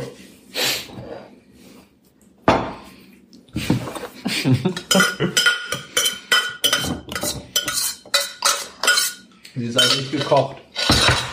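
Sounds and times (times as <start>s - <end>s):
laughter: 4.2s - 5.4s
speech: 4.4s - 5.2s, 10.1s - 10.6s
cutlery clinking and scraping on a plate while eating pasta with pesto: 4.8s - 11.3s.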